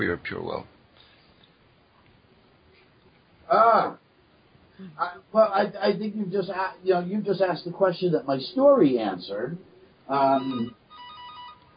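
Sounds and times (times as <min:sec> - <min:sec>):
speech: 0:00.0 - 0:00.8, 0:03.5 - 0:04.0, 0:04.8 - 0:10.8
mobile phone ringtone: 0:10.3 - 0:11.7.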